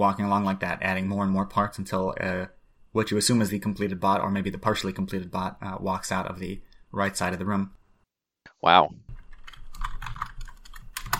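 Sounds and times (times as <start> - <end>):
speech: 0.0 - 7.8, 8.6 - 9.0
low hum: 0.0 - 8.1, 8.7 - 11.1
typing a chat message on a computer keyboard: 9.1 - 11.1.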